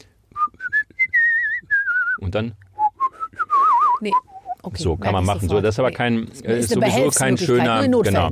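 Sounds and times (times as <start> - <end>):
person whistling a short melody through pursed lips: 0.3 - 2.2, 2.8 - 4.6
speech: 2.3 - 2.6, 4.0 - 8.2.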